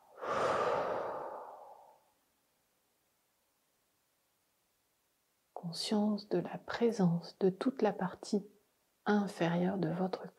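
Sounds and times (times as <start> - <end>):
slow soft breath during a stress-relief relaxation exercise: 0.0 - 2.1
speech: 5.7 - 8.5, 9.1 - 10.3.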